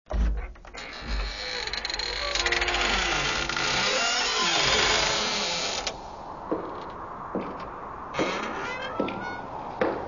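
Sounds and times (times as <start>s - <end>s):
entrance door creaking: 0.1s - 6.0s, 7.6s - 10.0s
wind at an entrance: 0.1s - 10.0s
footsteps at an entrance: 6.4s - 10.0s.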